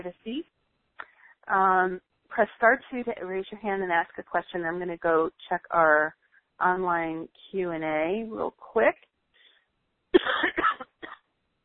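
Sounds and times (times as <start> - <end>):
speech: 0.0 - 0.6, 1.5 - 9.1
raspy coughs: 10.2 - 11.2.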